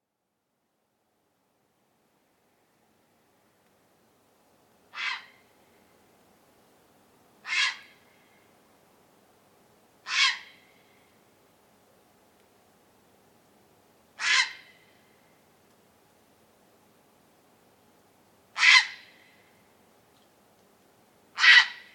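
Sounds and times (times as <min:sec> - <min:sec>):
grey heron Ardea cinerea calling: 0:04.9 - 0:05.4, 0:07.4 - 0:08.0, 0:10.1 - 0:10.6, 0:14.2 - 0:14.8, 0:18.6 - 0:19.1, 0:21.4 - 0:21.9.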